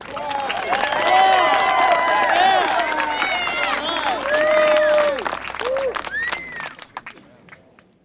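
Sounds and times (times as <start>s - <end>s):
crowd: 0.0s - 8.0s.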